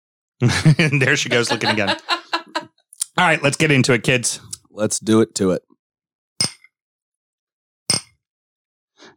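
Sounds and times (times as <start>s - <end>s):
speech: 0.4s - 2.2s, 3.2s - 5.7s
laughter: 0.4s - 2.7s
Bloody Mary glasses clinking in a toast: 6.4s - 6.7s, 7.9s - 8.2s.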